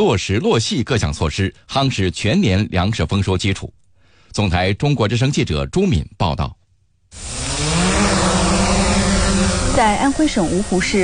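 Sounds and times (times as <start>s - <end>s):
speech: 0.0s - 7.4s, 9.8s - 11.0s
agricultural drone spraying fertilizer over a rapeseed field in Anhui China: 7.1s - 11.0s.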